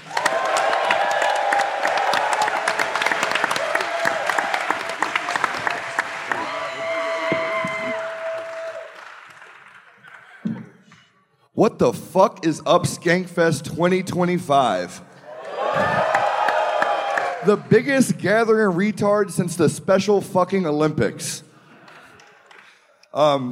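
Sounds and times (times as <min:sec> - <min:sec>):
crowd whooping and cheering: 0:00.0 - 0:09.5, 0:15.2 - 0:17.8
large crowd applauding: 0:00.0 - 0:10.5, 0:15.3 - 0:18.2, 0:21.8 - 0:22.8
speech: 0:11.6 - 0:15.1, 0:17.4 - 0:21.4, 0:23.2 - 0:23.5.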